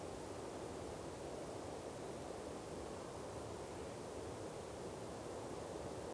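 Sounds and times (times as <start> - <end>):
light wind: 0.0 - 6.1.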